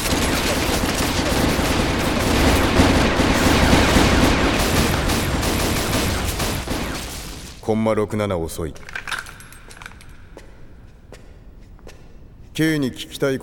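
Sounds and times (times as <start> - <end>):
sustained gunfire barrage: 0.0 - 7.7
speech: 7.7 - 9.0, 12.6 - 13.4.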